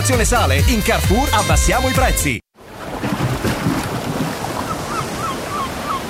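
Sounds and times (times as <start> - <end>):
speech: 0.1 - 2.4
sea waves breaking on shore: 2.6 - 6.0
faint bird calls chirping: 4.6 - 6.0.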